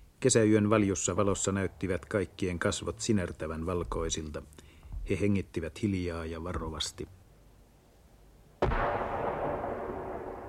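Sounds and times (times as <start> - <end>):
speech: 0.2 - 7.2
cannon shot fired toward a road from a summer-night spruce forest: 8.6 - 10.4.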